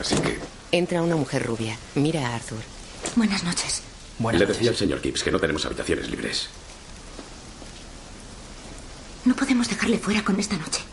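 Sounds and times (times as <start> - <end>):
speech: 0.0 - 6.6, 9.3 - 10.9
rain falling at night on surfaces: 0.0 - 10.9.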